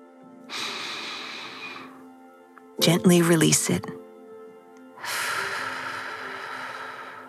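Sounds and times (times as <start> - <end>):
slow deep breath: 0.5 - 2.0, 5.0 - 7.2
speech: 2.8 - 4.0.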